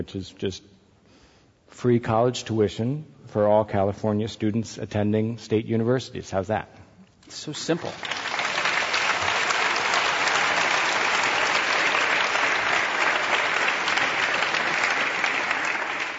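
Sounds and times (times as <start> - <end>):
speech: 0.0 - 0.8, 1.7 - 8.2
large audience applauding: 7.6 - 16.1.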